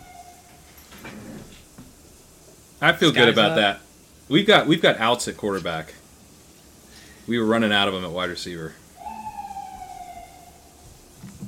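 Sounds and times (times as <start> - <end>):
speech: 2.8 - 6.0, 7.3 - 8.8
emergency vehicle siren wailing: 9.0 - 11.4.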